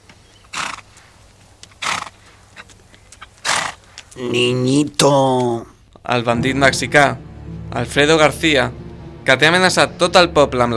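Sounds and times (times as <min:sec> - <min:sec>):
horse hooves clopping: 0:00.0 - 0:04.4
horse neighing: 0:01.8 - 0:02.2, 0:03.4 - 0:04.5
speech: 0:04.2 - 0:10.7.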